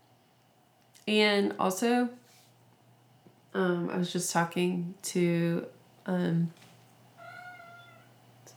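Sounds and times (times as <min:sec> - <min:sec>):
low steady hum: 0:00.0 - 0:08.5
speech: 0:01.1 - 0:02.2, 0:03.6 - 0:06.6
cat meowing: 0:07.2 - 0:08.2.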